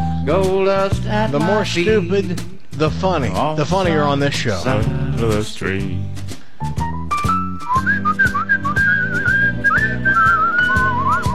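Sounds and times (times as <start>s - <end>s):
big-band backing with brass and rhythm hits: 0.0s - 11.3s
speech: 0.2s - 6.8s
person whistling a melodic tune: 6.6s - 11.3s.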